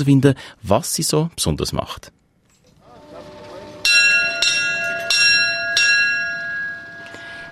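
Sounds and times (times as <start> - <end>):
speech: 0.0 - 2.2
bell rung at a lake shore to call a boat: 3.4 - 7.5.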